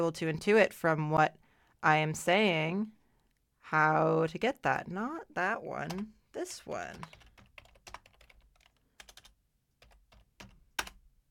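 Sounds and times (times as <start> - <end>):
speech: 0.0 - 3.0, 3.6 - 7.2
typing on a computer keyboard: 6.9 - 11.0.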